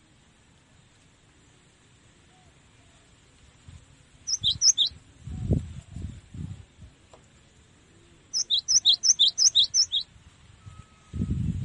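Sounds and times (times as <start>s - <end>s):
cinereous tit tutor song for training caged songbirds: 4.2s - 6.1s, 8.0s - 11.4s.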